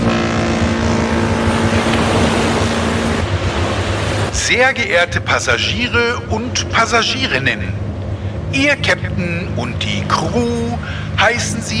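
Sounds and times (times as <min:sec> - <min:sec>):
water and waves at sea: 0:00.0 - 0:07.0
cruise ship engine drone at sea: 0:00.0 - 0:11.7
speech: 0:04.5 - 0:07.8, 0:08.5 - 0:11.7.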